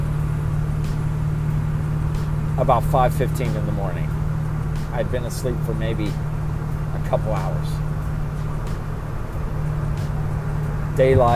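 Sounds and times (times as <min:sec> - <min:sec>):
heavy logging truck engine rumbling: 0:00.0 - 0:11.3
speech: 0:02.6 - 0:04.2, 0:04.9 - 0:06.3, 0:07.0 - 0:07.9, 0:11.0 - 0:11.3.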